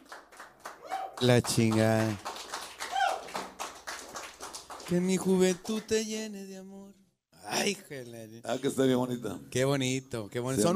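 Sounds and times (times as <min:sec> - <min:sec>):
hands clapping slowly: 0:00.0 - 0:06.0
speech: 0:01.2 - 0:02.3, 0:04.9 - 0:10.7.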